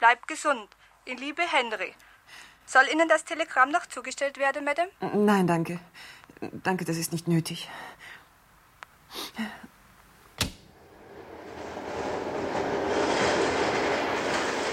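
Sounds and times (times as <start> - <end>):
speech: 0.0 - 8.2, 9.2 - 9.7
sharp clicks and knocks: 10.4 - 10.7
train passing: 10.7 - 14.7.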